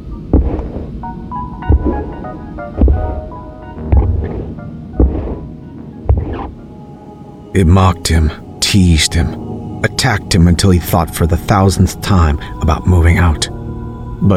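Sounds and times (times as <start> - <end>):
deep booming heartbeat-like thumps from a basement: 0.0 - 6.6
speech: 7.6 - 13.5, 14.2 - 14.3.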